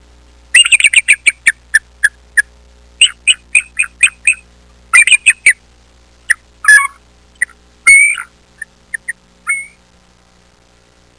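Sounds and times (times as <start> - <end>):
eagle calling: 0.5 - 5.6, 6.3 - 9.8.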